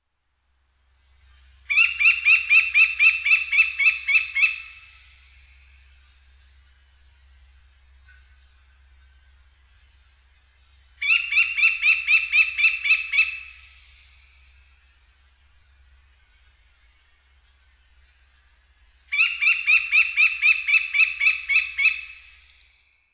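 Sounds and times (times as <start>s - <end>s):
blond-crested woodpecker singing: 1.0s - 5.9s, 7.8s - 16.4s, 19.0s - 22.2s.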